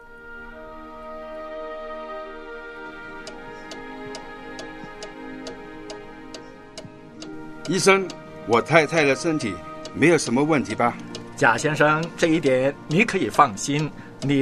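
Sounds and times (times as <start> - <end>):
soft sustained musical drone: 0.0 - 14.4
wall clock ticking: 3.2 - 14.4
speech: 7.7 - 14.4.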